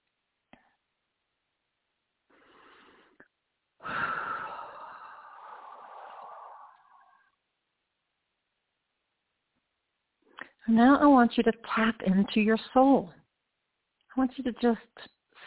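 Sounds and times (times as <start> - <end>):
person taking a deep breath during a guided breathing exercise: 2.3 - 3.2, 3.8 - 7.4
speech: 10.6 - 13.2, 14.2 - 15.1.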